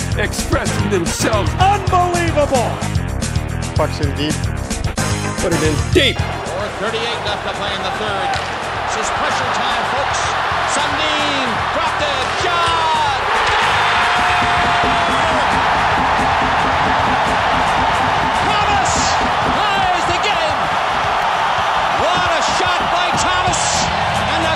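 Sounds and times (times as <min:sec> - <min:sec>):
speech: 0:00.2 - 0:03.0, 0:03.8 - 0:04.6, 0:05.4 - 0:10.4
crowd roaring at a basketball game: 0:06.1 - 0:24.5
people whooping at a basketball game: 0:06.3 - 0:24.5
thuds of a bouncing basketball: 0:12.3 - 0:24.1.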